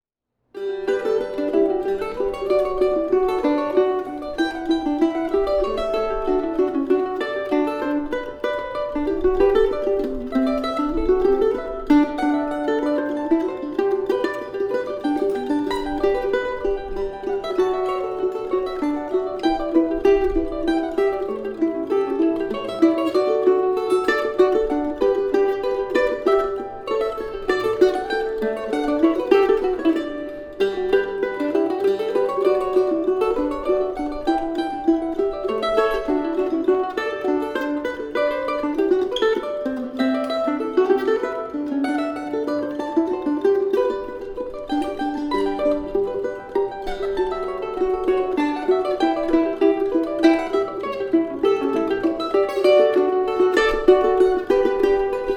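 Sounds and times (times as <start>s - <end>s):
mandolin duet: 0.5s - 55.3s.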